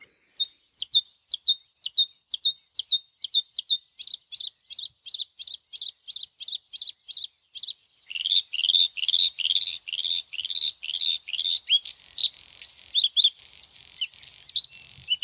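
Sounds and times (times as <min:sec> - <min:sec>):
bluethroat singing: 0:00.0 - 0:15.2.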